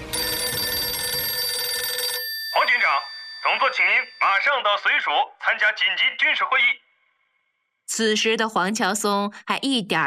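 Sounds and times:
telephone ringing with a steady electronic tone: 0:00.0 - 0:05.3
speech: 0:03.0 - 0:06.8, 0:07.9 - 0:10.0.

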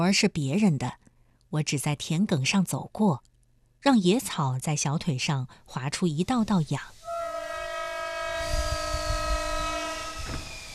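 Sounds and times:
speech: 0:00.0 - 0:07.0
train horn blaring in a long steady chord: 0:07.0 - 0:10.4.

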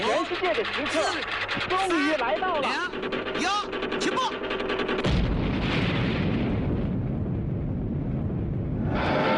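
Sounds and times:
speech: 0:00.1 - 0:04.4
atomic bomb explosion roaring: 0:05.0 - 0:09.3.

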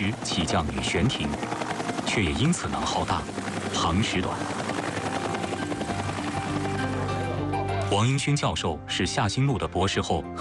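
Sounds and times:
helicopter rotor blades beating: 0:00.0 - 0:07.6
speech: 0:00.1 - 0:04.8, 0:07.9 - 0:10.3.

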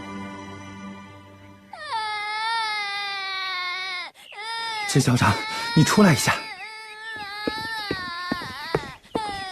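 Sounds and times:
little girl crying after falling from a wooden bucket: 0:01.7 - 0:09.5
speech: 0:04.9 - 0:06.4.

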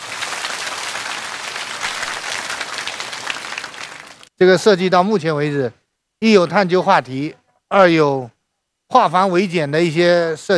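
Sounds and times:
roomful of students clapping in a classroom: 0:00.0 - 0:04.3
speech: 0:04.4 - 0:10.5.

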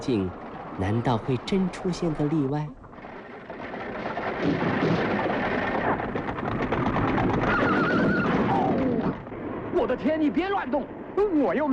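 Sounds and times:
speech: 0:00.0 - 0:02.8, 0:04.4 - 0:05.0, 0:09.8 - 0:11.7
clatter and rumble of carriage hooves and wheels: 0:00.0 - 0:11.7
horse-drawn carriage speeding across wilderness: 0:00.0 - 0:11.7
horse whinnying: 0:07.2 - 0:09.2.

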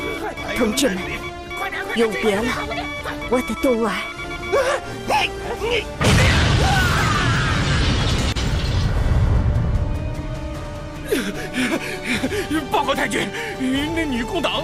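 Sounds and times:
speech: 0:00.6 - 0:06.8, 0:11.2 - 0:14.6
debris crackling: 0:05.8 - 0:10.8
explosion of a radio transmitter being blown up: 0:06.0 - 0:09.9.

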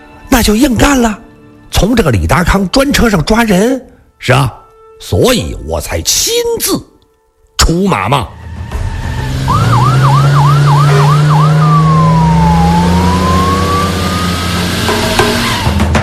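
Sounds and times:
speech: 0:00.4 - 0:01.2, 0:01.8 - 0:06.9, 0:07.6 - 0:08.4
police car siren wailing at an airport toll station: 0:08.4 - 0:15.8
car engine steady drone: 0:08.4 - 0:15.9.

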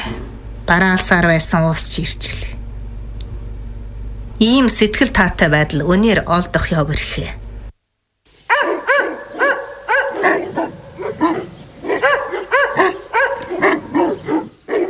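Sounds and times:
speech: 0:00.1 - 0:02.6, 0:04.4 - 0:07.4
thin mangy dog barking and yelping: 0:08.5 - 0:14.8.

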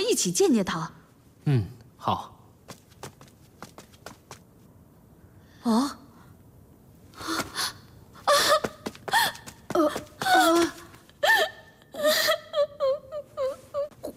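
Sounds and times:
speech: 0:00.1 - 0:02.4, 0:05.6 - 0:06.0, 0:09.8 - 0:10.7
woman sobbing in a costume drama scene: 0:07.5 - 0:14.1.

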